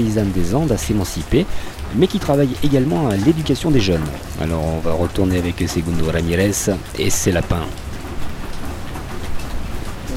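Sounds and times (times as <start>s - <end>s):
speech: 0.0s - 7.9s
rain falling in Wakabamba in the Andes: 0.0s - 10.1s.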